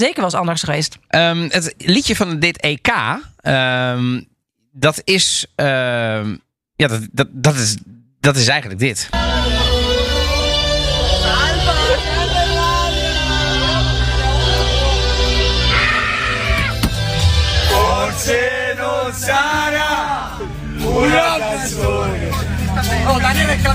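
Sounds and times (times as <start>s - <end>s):
speech: 0.0s - 9.7s
football team chanting together on a bus: 9.2s - 23.0s.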